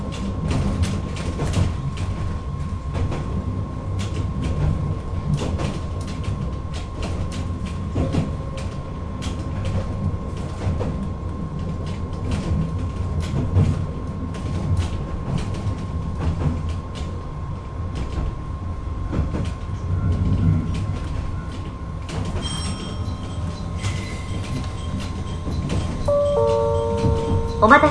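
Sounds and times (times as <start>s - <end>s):
local train rumbling, heard from inside: 0.0s - 27.8s
high tones: 26.1s - 27.8s
speech: 27.6s - 27.8s.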